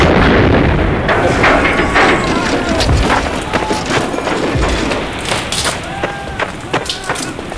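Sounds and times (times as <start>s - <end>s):
camper van exploding in a loud sustained blast: 0.0s - 6.0s
sharp bangs and crackling bursts: 0.0s - 7.5s.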